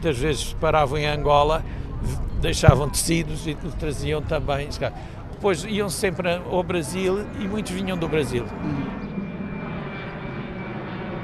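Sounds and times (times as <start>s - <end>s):
speech: 0.0s - 9.0s
airplane flying over the Tagus riverside in Lisbon: 0.0s - 11.2s.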